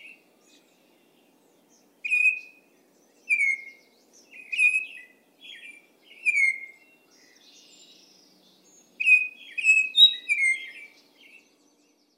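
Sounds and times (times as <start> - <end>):
Baltimore oriole whistled song: 2.1 - 2.6, 3.3 - 3.8, 4.4 - 6.9, 9.0 - 11.0.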